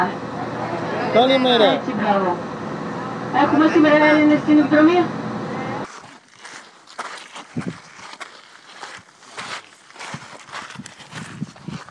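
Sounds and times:
speech: 0.0s - 0.3s, 1.2s - 2.5s, 3.3s - 5.2s
footsteps crunching over loose gravel on a volcano trail: 5.9s - 11.9s.

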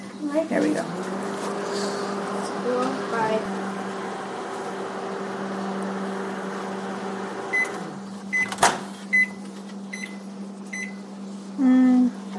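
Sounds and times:
microwave oven humming: 0.0s - 12.3s
speech: 0.3s - 1.2s, 2.7s - 3.7s
microwave oven clunk on stopping: 7.5s - 8.9s.

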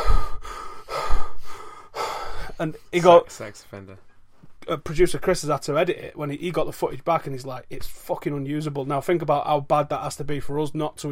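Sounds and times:
heavy breathing into a microphone: 0.0s - 2.9s
speech: 2.6s - 11.1s.

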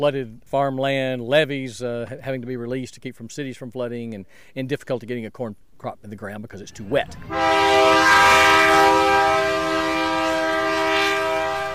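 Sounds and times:
speech: 0.0s - 9.1s
freight train rumbling past: 6.8s - 11.7s
freight train horn sounding loud and sustained: 7.3s - 11.7s.

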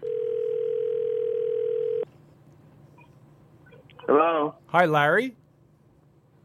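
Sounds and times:
telephone dial tone while calling: 0.0s - 2.0s
speech: 4.2s - 5.4s.

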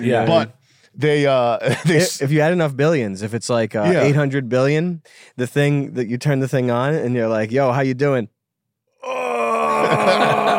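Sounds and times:
speech: 0.0s - 8.4s, 9.9s - 10.4s
laughter: 1.6s - 2.2s, 9.6s - 10.5s
voice imitating a groan: 9.0s - 10.5s.

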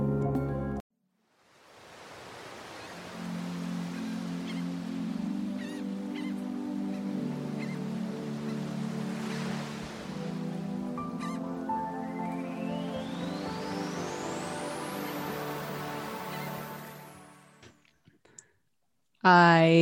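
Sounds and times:
music: 0.0s - 0.8s, 3.2s - 17.8s
speech: 19.2s - 19.7s.

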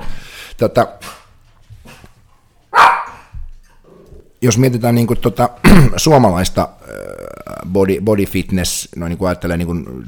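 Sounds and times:
speech: 0.6s - 1.0s, 4.4s - 10.0s
dog barking: 2.7s - 3.3s.

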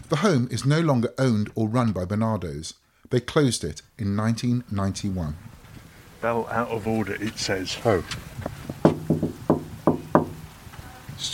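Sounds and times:
speech: 0.1s - 5.5s, 6.2s - 8.6s
knuckles knocking on a townhouse door: 8.7s - 10.5s.

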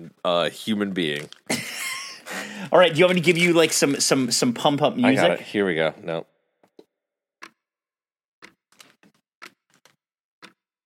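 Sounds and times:
speech: 0.2s - 1.8s, 2.6s - 6.3s
clock ticking with sharp dry clicks: 7.4s - 7.7s, 8.4s - 8.8s, 9.4s - 9.8s, 10.4s - 10.6s.

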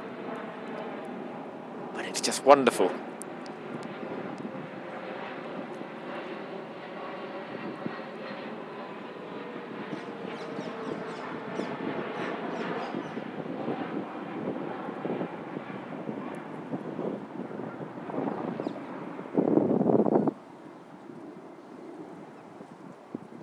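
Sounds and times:
aircraft engines droning overhead: 0.0s - 23.4s
speech: 2.1s - 3.1s
wind buffeting the microphone: 3.6s - 6.2s, 7.4s - 8.1s, 9.8s - 23.4s.

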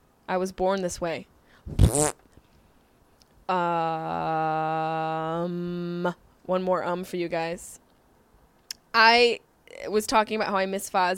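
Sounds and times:
speech: 0.3s - 2.2s, 3.5s - 7.8s, 9.0s - 11.1s
fart: 1.7s - 2.2s.

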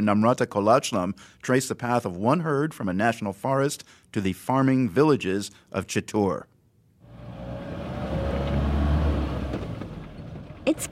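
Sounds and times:
speech: 0.0s - 6.5s, 10.7s - 10.9s
jeep driving through a national park forest at night: 7.0s - 10.9s.

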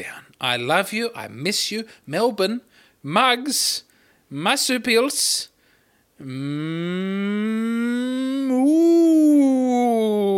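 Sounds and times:
speech: 0.0s - 5.5s, 6.2s - 10.3s
person giving a long loud drawn-out moo like a cow: 6.2s - 10.3s.

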